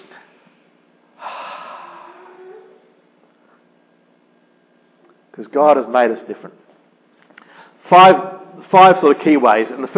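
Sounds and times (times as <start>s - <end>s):
people drawing a big breath in together during a relaxation exercise: 1.2s - 2.4s, 7.4s - 7.8s
speech: 5.4s - 6.6s, 7.9s - 9.9s.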